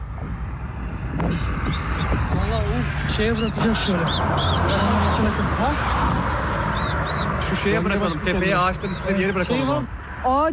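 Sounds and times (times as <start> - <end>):
low rumble: 0.0 - 10.5
speech: 1.3 - 10.5
injured flightless bird calling harshly: 3.2 - 9.9.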